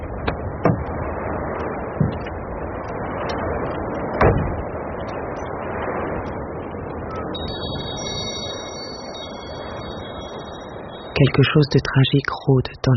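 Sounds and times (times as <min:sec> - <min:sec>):
car engine rumble pulling into a gas station: 0:00.0 - 0:07.3
car door thumps: 0:02.0 - 0:02.3, 0:04.2 - 0:04.6
high electronic beeping tone: 0:07.3 - 0:12.9
speech: 0:11.2 - 0:12.9.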